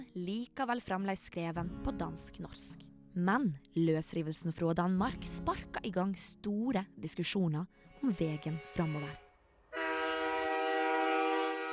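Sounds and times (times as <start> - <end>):
speech: 0.0 - 9.2
train horn on a railway blowing: 9.7 - 11.7.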